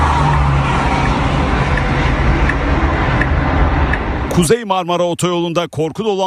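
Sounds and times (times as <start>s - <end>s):
car dragged and spun by an excavation dump truck on a motorway: 0.0s - 4.4s
speech: 4.4s - 6.2s.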